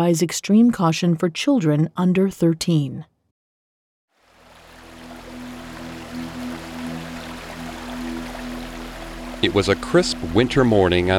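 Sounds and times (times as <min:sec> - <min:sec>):
speech: 0:00.0 - 0:03.1, 0:09.4 - 0:11.1
stream flowing on a crisp winter morning near Ipswich England: 0:04.2 - 0:11.1.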